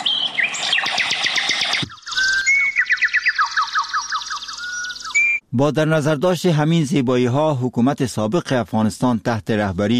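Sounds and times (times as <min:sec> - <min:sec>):
birds singing in a busy chorus of chirps and trills: 0:00.0 - 0:05.4
speech: 0:05.5 - 0:09.9.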